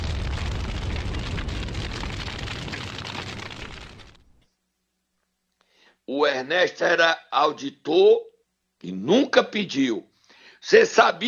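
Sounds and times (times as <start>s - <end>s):
MOAB bomb blast with crackling debris: 0.0s - 4.4s
speech: 6.1s - 11.2s.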